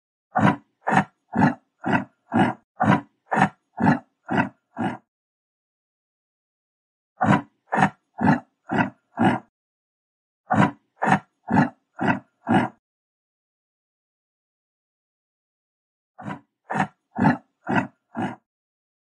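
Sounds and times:
yak: 0.3 - 5.1, 7.2 - 9.5, 10.5 - 12.8, 16.2 - 18.5.

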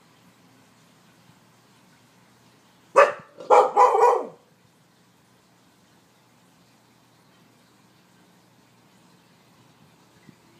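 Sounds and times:
Akita dog barking: 3.0 - 4.4.

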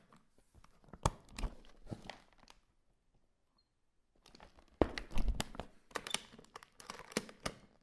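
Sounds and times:
luggage suitcase being opened: 0.7 - 2.5, 4.3 - 7.6.

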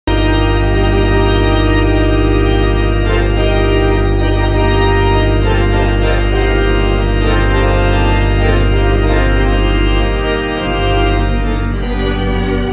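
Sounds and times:
organ playing: 0.1 - 12.7.

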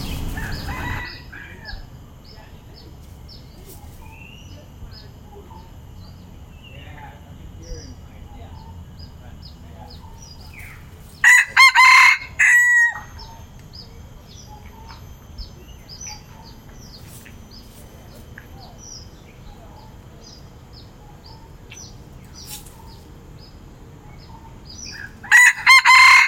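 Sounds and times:
red junglefowl brief broken crow: 0.0 - 1.8, 11.2 - 13.3, 24.9 - 26.2
soft twittering from small birds: 0.0 - 26.2.

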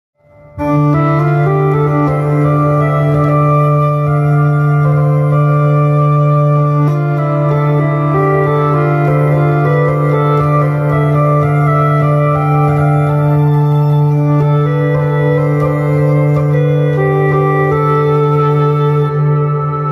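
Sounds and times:
hurdy gurdy: 0.5 - 19.9.

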